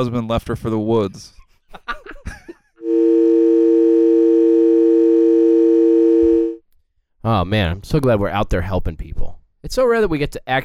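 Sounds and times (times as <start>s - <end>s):
speech: 0.0s - 1.9s, 7.2s - 10.6s
telephone call tone: 2.8s - 6.6s.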